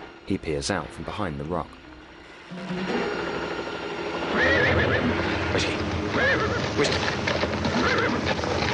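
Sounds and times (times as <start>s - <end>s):
speech: 0.3s - 1.8s, 2.5s - 3.1s, 4.4s - 7.4s
frightened horse neighing on a narrow ridge: 4.2s - 8.7s.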